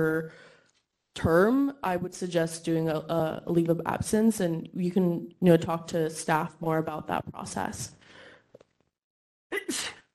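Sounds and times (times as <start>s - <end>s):
speech: 0.0s - 0.5s, 1.2s - 8.0s
sneeze: 9.5s - 10.1s.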